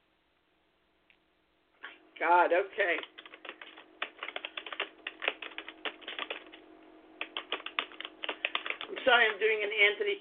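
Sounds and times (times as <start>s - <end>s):
speech: 2.2s - 3.2s, 9.0s - 10.2s
typing on a computer keyboard: 2.8s - 6.6s, 7.2s - 9.4s.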